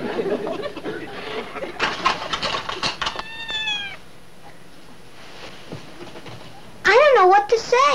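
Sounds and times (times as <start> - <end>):
laughter: 0.0 - 2.4
faint hum: 0.0 - 7.9
household rustling and clattering: 1.8 - 3.6, 5.2 - 6.6
cat meowing while eating: 3.2 - 4.0.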